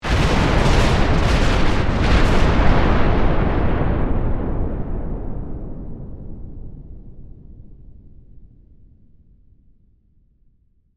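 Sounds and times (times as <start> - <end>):
massive bomb explosion in warfare: 0.0 - 7.9.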